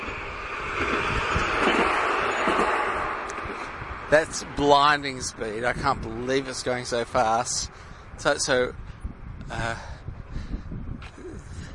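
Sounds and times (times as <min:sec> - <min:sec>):
tram wheels clunking on the rails: 0:00.0 - 0:04.1
tram rumbling past: 0:00.0 - 0:05.8
speech: 0:04.1 - 0:08.8, 0:09.5 - 0:09.9.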